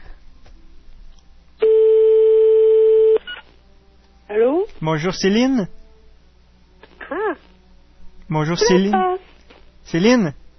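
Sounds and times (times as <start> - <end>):
faint room noise: 0.0 - 10.5
French telephone ringback tone: 1.6 - 3.2
speech: 4.8 - 5.8, 8.3 - 9.2, 9.9 - 10.4.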